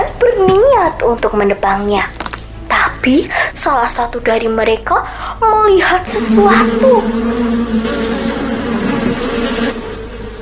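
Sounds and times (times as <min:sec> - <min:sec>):
speech: 0:00.9 - 0:02.2, 0:03.0 - 0:08.3
honeybees buzzing around their hive in an apple tree: 0:06.1 - 0:10.3.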